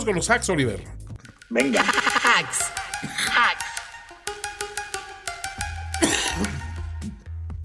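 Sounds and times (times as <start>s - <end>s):
speech: 0.0s - 3.6s
steady rhythmic tonal background: 0.0s - 7.6s
regular clicks: 1.2s - 5.6s
laughter: 1.6s - 2.6s
person coughing: 6.0s - 6.8s.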